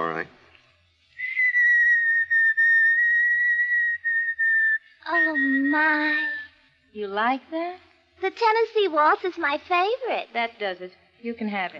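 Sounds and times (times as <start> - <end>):
person whistling a clear steady melody: 1.2 - 6.5
speech: 5.2 - 11.7.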